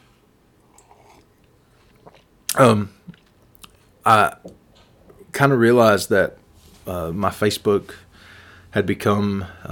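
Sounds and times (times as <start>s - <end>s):
person slurping a hot drink: 0.6s - 2.3s
speech: 2.6s - 3.0s, 4.0s - 4.6s, 5.4s - 8.0s, 8.7s - 9.6s
short voiced exhale: 8.1s - 8.7s.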